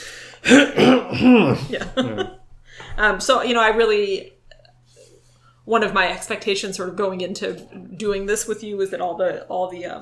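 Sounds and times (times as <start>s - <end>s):
man clearing throat: 0.4s - 2.3s
speech: 0.5s - 2.4s, 3.0s - 4.4s, 5.7s - 9.9s.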